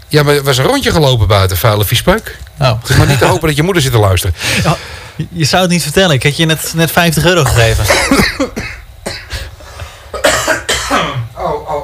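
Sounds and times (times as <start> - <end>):
speech: 0.1 - 8.6
harsh rough coughing fit from someone with something stuck in the throat: 7.7 - 11.8.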